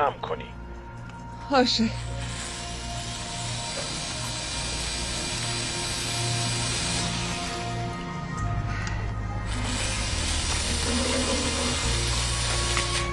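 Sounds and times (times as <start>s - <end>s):
speech: 0.0s - 0.6s, 1.5s - 2.1s
power drill boring into material: 1.9s - 8.4s, 9.4s - 13.1s.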